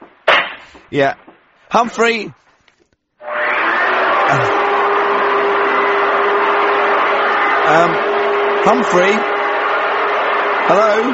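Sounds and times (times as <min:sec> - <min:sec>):
speech: 0:00.6 - 0:02.5, 0:04.3 - 0:04.5, 0:07.7 - 0:09.3, 0:10.7 - 0:11.1
vacuum cleaner running with whining motor hum: 0:03.3 - 0:11.1.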